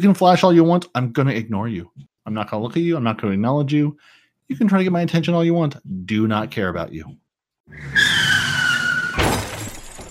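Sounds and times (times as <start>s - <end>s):
speech: 0.0s - 8.3s
loud drawn-out tire screech: 7.7s - 9.4s
car crash: 8.0s - 10.0s
clattering debris: 9.0s - 10.0s
shattering glass: 9.0s - 10.0s.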